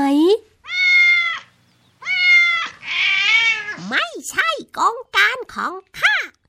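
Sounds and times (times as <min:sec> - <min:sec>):
cat meowing: 0:00.6 - 0:03.9
speech: 0:04.1 - 0:06.1.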